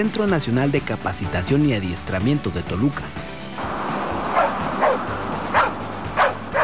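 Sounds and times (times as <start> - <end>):
speech: 0.0 - 3.4
steady outdoor noise: 3.2 - 6.6
search and rescue dog barking at a disaster simulation: 4.3 - 6.6.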